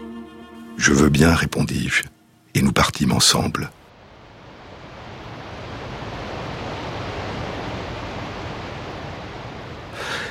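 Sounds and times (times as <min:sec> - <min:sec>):
speech: 0:00.8 - 0:03.8
waterfall roaring: 0:03.9 - 0:10.2.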